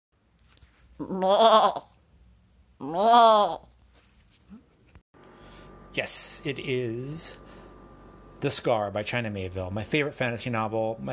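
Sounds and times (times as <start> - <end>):
goat bleating: 1.0 - 1.9
speech: 1.0 - 1.9, 2.8 - 3.7, 6.0 - 7.4, 8.4 - 11.1.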